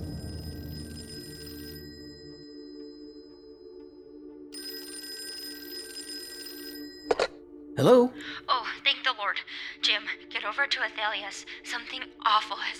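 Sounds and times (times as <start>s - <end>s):
telephone ringing with an incoming call, bright trilling bell: 0.0s - 3.4s, 4.6s - 7.4s
speech: 7.8s - 12.7s.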